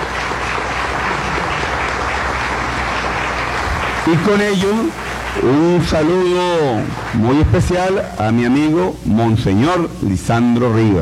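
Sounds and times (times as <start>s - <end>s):
crowd applauding: 0.0s - 9.8s
speech: 4.1s - 11.0s.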